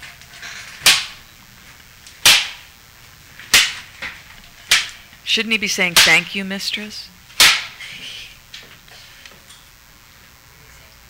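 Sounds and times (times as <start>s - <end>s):
loud sharp slaps on a person: 0.8s - 1.2s, 2.2s - 2.6s, 3.5s - 3.8s, 4.7s - 5.0s, 7.4s - 7.8s
speech: 5.3s - 7.2s.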